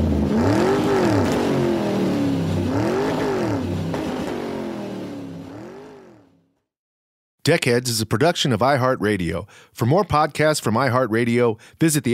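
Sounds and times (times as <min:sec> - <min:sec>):
car engine starting and revving: 0:00.0 - 0:06.4
speech: 0:07.4 - 0:12.1.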